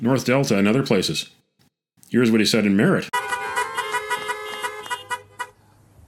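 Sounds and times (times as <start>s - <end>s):
speech: 0.0s - 1.5s, 2.1s - 3.2s
several car horns honking at a parking-lot rally: 3.1s - 5.6s.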